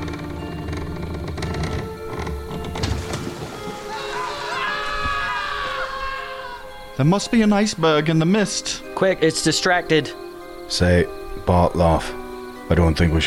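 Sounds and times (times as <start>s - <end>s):
water splashing from a capsizing boat: 2.6s - 5.1s
high-pitched voices screaming: 3.5s - 6.9s
speech: 7.0s - 13.2s.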